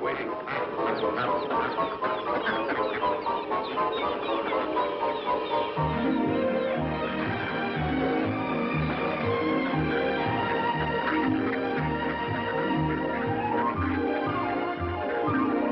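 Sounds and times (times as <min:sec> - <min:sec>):
flock of ducks quacking: 0:00.0 - 0:15.7.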